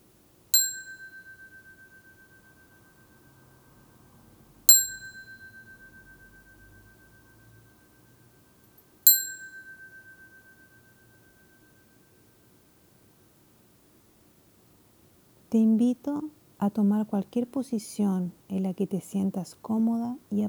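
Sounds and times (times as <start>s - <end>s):
faint low noise: 0.0s - 20.4s
meditation bell struck and ringing: 0.6s - 3.5s, 4.7s - 8.0s, 9.0s - 12.2s
speech: 15.5s - 20.4s.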